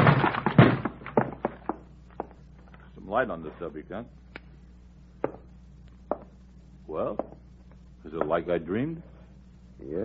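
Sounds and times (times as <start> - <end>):
locked door shouldered open with a heavy crash: 0.0 - 1.5
speech: 3.2 - 4.2, 6.9 - 7.4, 8.0 - 9.1, 9.8 - 10.0.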